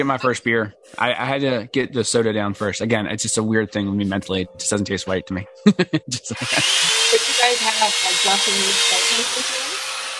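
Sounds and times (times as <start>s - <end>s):
laughter: 0.0s - 8.4s
speech: 0.0s - 9.6s
power drill drilling with high-pitched whine: 6.4s - 10.1s.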